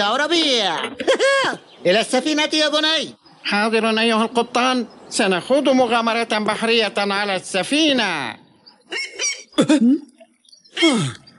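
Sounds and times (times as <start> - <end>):
speech: 0.0 - 10.1, 10.8 - 11.2
seagull squawking: 8.8 - 9.6.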